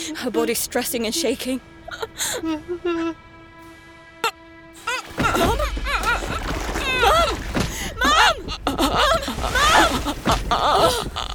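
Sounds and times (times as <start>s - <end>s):
speech: 0.1s - 3.3s, 8.3s - 11.3s
low water wash: 4.8s - 11.3s
sailboat rigging and wood creaking and groaning: 4.8s - 11.3s.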